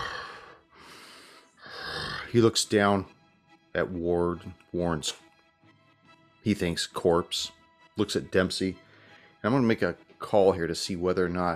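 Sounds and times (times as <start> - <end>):
person imitating a demon's heavy monstrous breathing: 0.0 - 0.6, 1.6 - 2.3
speech: 2.3 - 3.2, 3.8 - 5.2, 6.4 - 8.8, 9.4 - 11.5.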